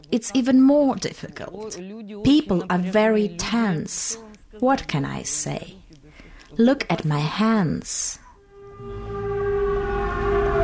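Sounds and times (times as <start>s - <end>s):
speech: 0.1s - 5.8s, 6.6s - 8.2s
air raid siren wailing: 8.4s - 10.6s.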